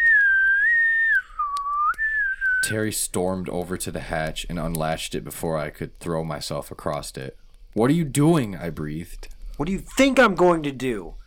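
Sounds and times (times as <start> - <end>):
loud sustained whistle: 0.0 - 2.8
speech: 2.6 - 11.2.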